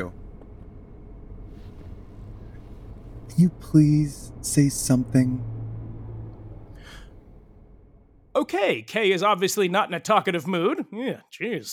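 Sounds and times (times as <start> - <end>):
car engine and road rumble inside a car moving through city traffic: 0.0 - 8.4
speech: 3.3 - 5.5, 8.4 - 11.7.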